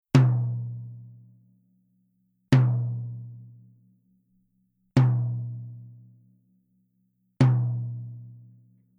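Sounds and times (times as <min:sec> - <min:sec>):
soft resonant glass tom drum: 0:00.1 - 0:01.4, 0:02.5 - 0:03.7, 0:05.0 - 0:06.2, 0:07.4 - 0:08.7.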